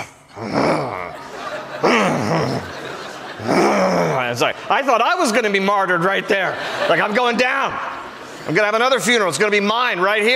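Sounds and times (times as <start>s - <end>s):
person imitating the growling murmur of a funeral audience: 0.0s - 4.7s
laughter: 0.4s - 10.3s
speech: 4.3s - 7.9s, 8.5s - 10.3s.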